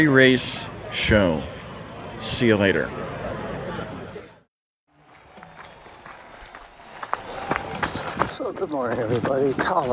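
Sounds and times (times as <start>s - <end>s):
speech: 0.0s - 1.6s, 2.2s - 3.2s, 8.4s - 9.9s
footsteps of a person running through a park: 5.0s - 9.9s.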